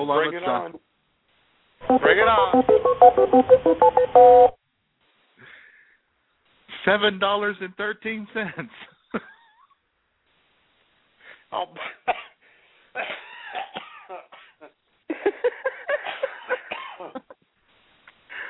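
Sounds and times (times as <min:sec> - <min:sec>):
speech: 0:00.0 - 0:00.9, 0:01.8 - 0:04.6, 0:06.8 - 0:09.3, 0:11.5 - 0:12.3
strained wheezy breaths: 0:05.4 - 0:06.1, 0:12.4 - 0:13.0, 0:18.3 - 0:18.4
long coughing fit heard through a thin phone-like line: 0:11.8 - 0:12.4, 0:13.0 - 0:14.7, 0:16.0 - 0:17.2.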